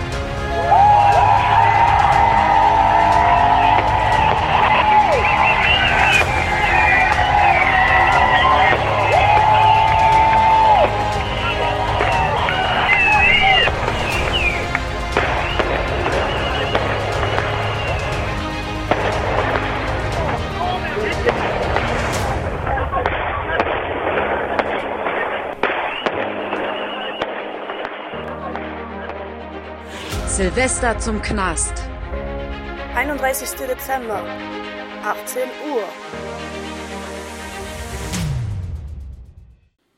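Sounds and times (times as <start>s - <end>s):
large outdoor crowd shouting and cheering outside a prison: 0.0s - 29.2s
whistles: 3.6s - 10.1s, 11.2s - 18.3s, 25.8s - 28.1s
speech: 30.6s - 31.9s, 33.2s - 36.4s.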